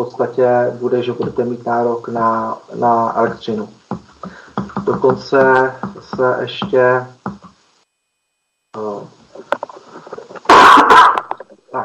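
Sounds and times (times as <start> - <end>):
speech: 0.0 - 7.2, 8.8 - 9.2
person coughing: 10.5 - 11.3.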